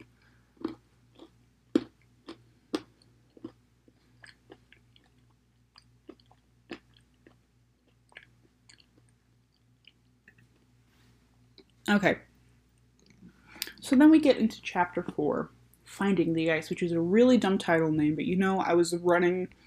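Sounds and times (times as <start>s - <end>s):
chewing popcorn: 0.0s - 10.8s
low hum: 0.0s - 19.6s
speech: 11.9s - 12.3s, 13.9s - 19.6s.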